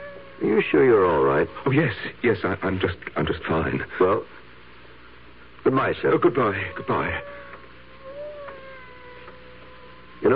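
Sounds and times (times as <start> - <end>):
cat meowing: 0.0 - 1.8, 6.4 - 10.3
steady hiss: 0.0 - 10.3
speech: 0.4 - 4.4, 5.6 - 7.4, 10.2 - 10.3.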